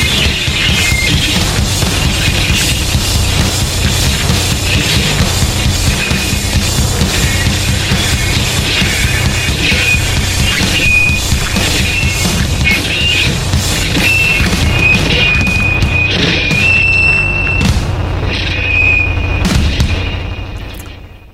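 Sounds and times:
electric guitar being smashed with crashing booming amp noise: 0.0s - 21.3s
piercing amp feedback squeals: 0.0s - 21.3s.

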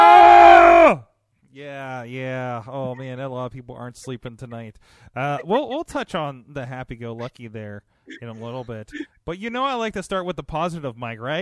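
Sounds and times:
few voices screaming: 0.0s - 1.0s
speech: 2.6s - 11.4s.

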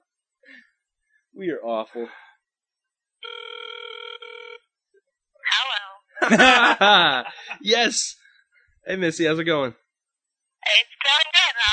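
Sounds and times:
speech: 1.4s - 2.2s, 6.3s - 8.2s, 8.8s - 9.8s, 10.7s - 11.7s
ringback tone from an outgoing phone call: 3.2s - 4.7s
laughter: 6.2s - 7.8s.

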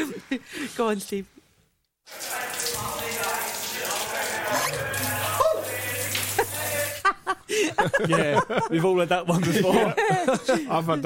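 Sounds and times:
speech: 0.0s - 1.4s, 7.5s - 11.0s
shower running: 2.1s - 7.1s
laughter: 3.3s - 11.0s.

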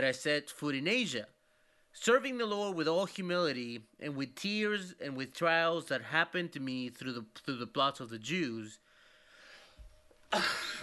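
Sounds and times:
speech: 0.0s - 1.4s, 2.0s - 8.9s, 10.3s - 10.8s
person coughing: 10.3s - 10.8s.

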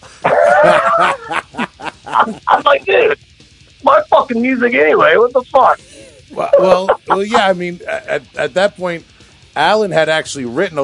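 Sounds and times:
laughter: 0.2s - 2.9s, 5.8s - 8.4s
dog barking and howling: 0.3s - 1.4s
speech: 1.0s - 1.3s, 2.3s - 10.8s.

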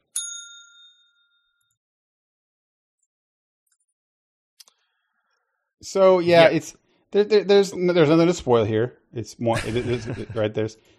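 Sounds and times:
small bell struck: 0.0s - 1.8s
speech: 5.8s - 10.9s
laughter: 9.5s - 10.7s.

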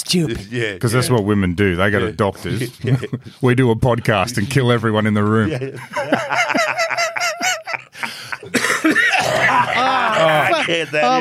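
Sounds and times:
speech: 0.0s - 7.0s, 10.2s - 11.2s
laughter: 2.5s - 3.3s, 5.3s - 11.2s
heavy coughing fits: 8.4s - 9.8s.

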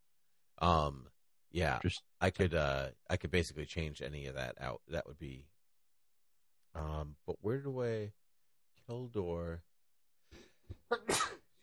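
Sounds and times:
speech: 0.6s - 5.5s, 6.8s - 8.2s, 8.8s - 9.7s
person sneezing: 10.9s - 11.5s.

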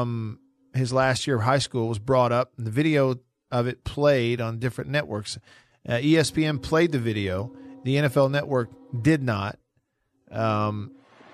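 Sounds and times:
speech: 0.0s - 9.6s, 10.3s - 11.0s
train horn: 6.1s - 9.5s.

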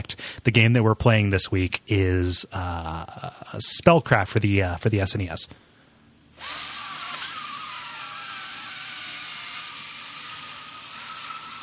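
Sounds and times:
speech: 0.4s - 5.8s
balloon leaking air: 6.4s - 11.6s.

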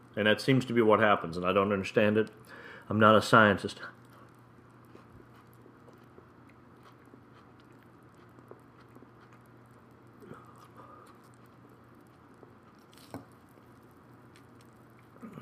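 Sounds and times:
speech: 0.2s - 4.0s
person biting into food and chewing: 4.0s - 15.3s.

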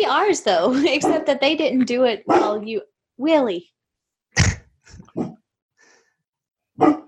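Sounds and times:
speech: 0.0s - 3.8s, 6.8s - 7.0s
large dog barking in deep gruff woofs: 2.3s - 2.6s, 6.8s - 7.0s.

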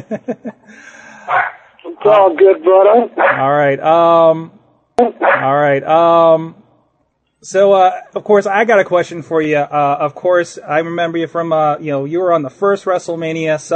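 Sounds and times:
laughter: 0.0s - 1.1s
speech: 0.0s - 6.6s, 7.4s - 13.7s
dogs barking and yelping: 1.2s - 1.7s, 3.2s - 3.5s, 5.1s - 5.5s.

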